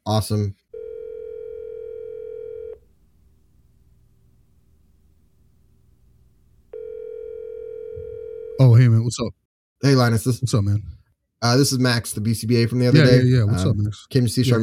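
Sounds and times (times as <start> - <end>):
speech: 0.0 - 0.6, 8.6 - 14.6
phone line tone while a call is placed: 0.8 - 2.8, 6.7 - 8.7
faint hum: 1.6 - 8.3.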